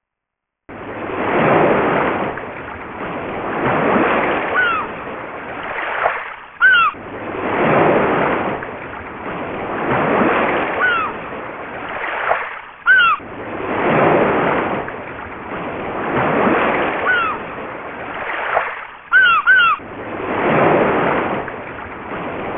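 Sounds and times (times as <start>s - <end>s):
sea: 0.7s - 22.5s
seagull calling: 4.4s - 5.0s, 6.6s - 7.0s, 10.7s - 11.2s, 12.8s - 13.3s, 17.0s - 17.5s, 19.1s - 19.8s.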